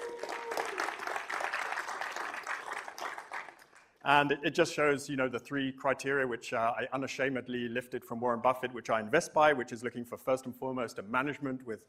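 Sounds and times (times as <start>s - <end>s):
audience applause: 0.0s - 3.9s
speech: 4.1s - 11.8s.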